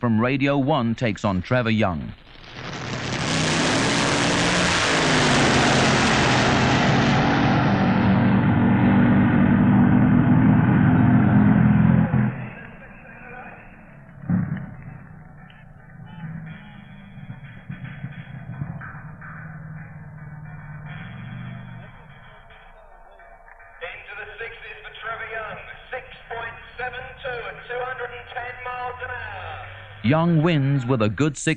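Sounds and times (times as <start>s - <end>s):
speech: 0.0s - 2.7s, 30.1s - 31.5s
two top fuel dragsters roaring down a drag strip: 2.4s - 31.2s
quieter murmur: 9.7s - 31.5s.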